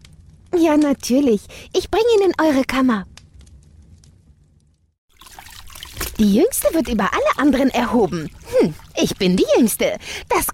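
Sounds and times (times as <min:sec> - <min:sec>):
speech: 0:00.6 - 0:03.1, 0:06.2 - 0:10.5
cold water poured into a cup: 0:05.1 - 0:09.8.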